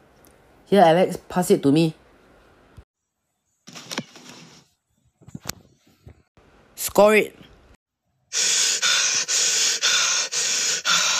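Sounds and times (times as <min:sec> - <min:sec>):
speech: 0:00.7 - 0:02.0, 0:07.0 - 0:07.4
heavy panting of someone out of breath after playing football: 0:08.3 - 0:11.1.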